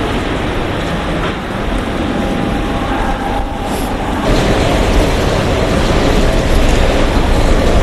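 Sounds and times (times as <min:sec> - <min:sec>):
train pulling in at a station platform: 0:00.0 - 0:07.8.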